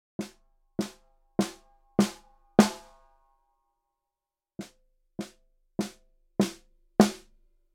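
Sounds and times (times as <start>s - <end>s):
snare drum struck with a felt mallet: 0.2s - 3.0s, 4.6s - 7.4s.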